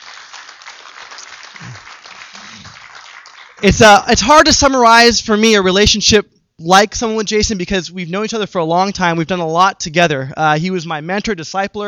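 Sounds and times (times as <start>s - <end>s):
crowd applauding as a guest speaker is invited up: 0.0s - 3.7s
speech: 3.6s - 11.8s.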